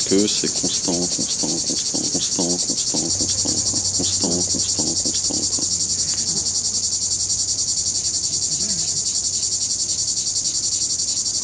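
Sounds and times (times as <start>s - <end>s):
speech: 0.0s - 2.1s
laughter: 0.0s - 6.2s
cicadas buzzing: 0.0s - 11.4s.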